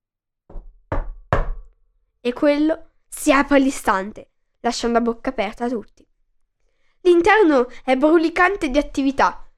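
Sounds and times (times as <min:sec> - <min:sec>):
heavy knocking on a large wooden door: 0:00.5 - 0:01.7
speech: 0:02.2 - 0:06.0, 0:07.0 - 0:09.4.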